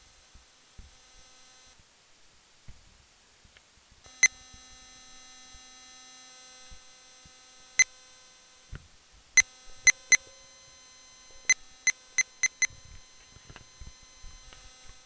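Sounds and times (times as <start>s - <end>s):
digital clock: 11.4s - 15.0s.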